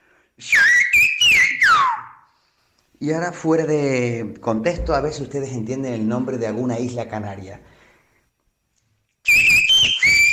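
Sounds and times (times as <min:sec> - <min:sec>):
whistled Spanish phrase: 0:00.4 - 0:02.3, 0:09.2 - 0:10.3
speech: 0:03.0 - 0:07.7.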